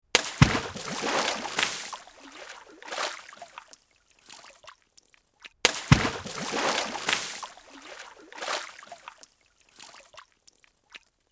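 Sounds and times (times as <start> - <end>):
big splash: 0.2 - 3.6, 5.7 - 9.1.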